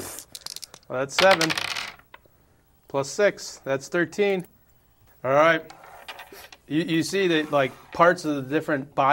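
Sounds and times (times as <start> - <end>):
dice rolled during a tabletop role-playing game: 0.2 - 2.1
speech: 0.9 - 1.8, 2.9 - 4.6, 5.2 - 5.8, 6.3 - 9.1.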